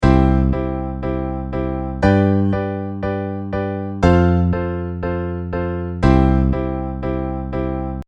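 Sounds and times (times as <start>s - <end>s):
piano downbeat rhythm: 0.0s - 8.0s.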